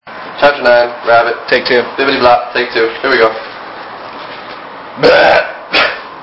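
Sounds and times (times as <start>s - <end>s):
speech: 0.4s - 3.5s, 5.0s - 5.5s
loud burp: 5.0s - 6.1s.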